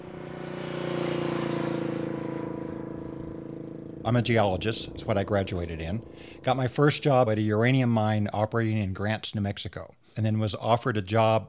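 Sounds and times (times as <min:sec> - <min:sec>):
car engine humming at cruising speed: 0:00.0 - 0:08.9
faint road noise: 0:00.0 - 0:09.2
speech: 0:04.0 - 0:11.4.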